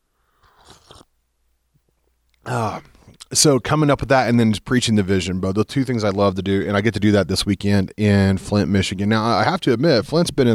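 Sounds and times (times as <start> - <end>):
slurping coffee from a cup: 0.3 - 1.1
speech: 2.5 - 10.5.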